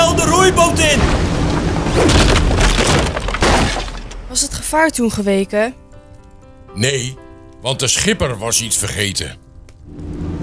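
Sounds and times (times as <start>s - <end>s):
ship crashing bow-first into dike: 0.8s - 4.2s
debris breaking: 0.9s - 4.5s
wood splintering and cracking: 1.0s - 4.4s
speech: 4.4s - 5.9s, 6.8s - 10.2s.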